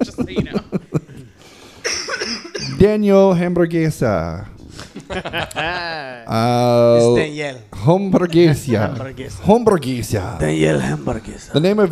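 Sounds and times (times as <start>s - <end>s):
laughter: 0.0s - 2.8s, 4.8s - 6.3s, 7.8s - 9.6s
sharp coughs: 1.8s - 2.8s
speech: 2.8s - 11.9s.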